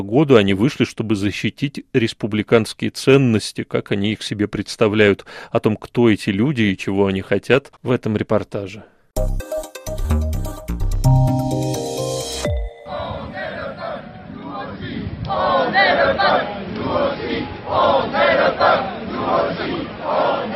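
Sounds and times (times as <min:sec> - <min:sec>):
speech: 0:00.0 - 0:10.0
short burst of bright tonal music: 0:09.2 - 0:13.7
large protest crowd chanting slogans in rhythmic unison in rain and gusty wind: 0:12.9 - 0:20.5.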